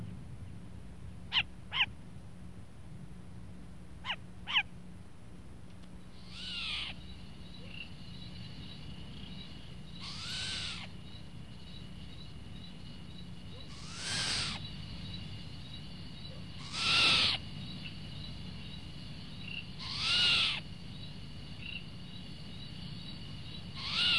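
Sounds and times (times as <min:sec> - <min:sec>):
short-eared owl call: 0:01.3 - 0:01.9, 0:04.0 - 0:04.7, 0:06.2 - 0:07.0, 0:10.0 - 0:10.9, 0:13.6 - 0:14.6, 0:16.3 - 0:17.4, 0:19.8 - 0:20.6, 0:23.8 - 0:24.1.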